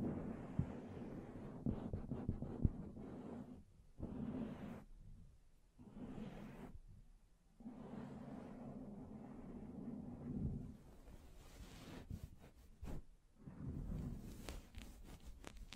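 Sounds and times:
hands brushing and scratching on a microphone: 0.0 - 5.2, 5.8 - 7.0, 7.6 - 15.7.

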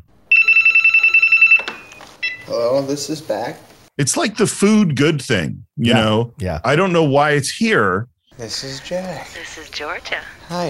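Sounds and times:
telephone bell ringing loudly: 0.3 - 2.5
speech: 2.5 - 10.6.

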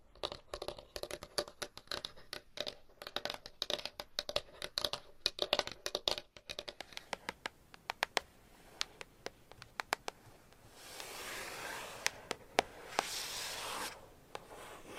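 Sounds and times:
rapid tapping and bright clicks: 0.1 - 10.2
hissy rubbing: 10.6 - 14.9.

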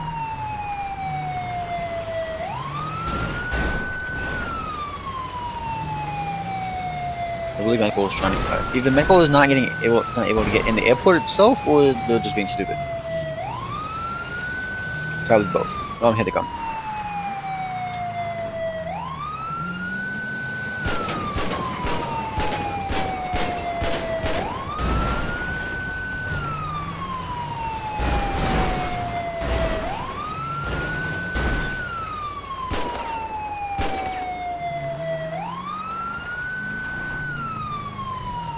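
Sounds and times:
police-style siren wailing: 0.0 - 38.5
speech: 7.6 - 13.0, 15.3 - 16.6
gunshots fired at a car engine: 20.8 - 25.4, 30.6 - 31.9, 32.7 - 34.4.

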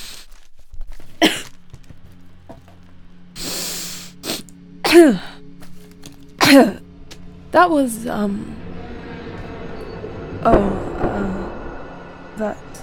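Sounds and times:
person sniffing deeply at a cotton pad soaked with liquid: 0.0 - 1.6, 3.4 - 4.5
snort-like voiced exhale: 3.4 - 4.5
speech: 4.9 - 5.3, 6.5 - 6.8, 7.5 - 8.6, 10.4 - 10.9, 12.4 - 12.6.

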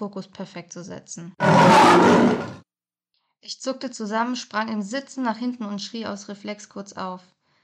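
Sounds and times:
speech: 0.0 - 2.7, 3.4 - 7.3
lion roaring: 1.4 - 2.6.

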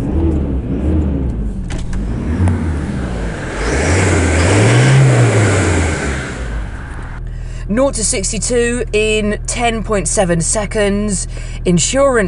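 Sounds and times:
car engine starting, idling and revving: 0.0 - 7.3
speech: 7.8 - 12.2.

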